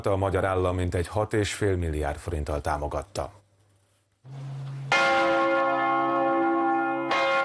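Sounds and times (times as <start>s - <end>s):
speech: 0.0s - 3.4s, 4.2s - 4.5s
church bells of the renovated Matthias Church in Budapest ringing: 4.3s - 7.4s.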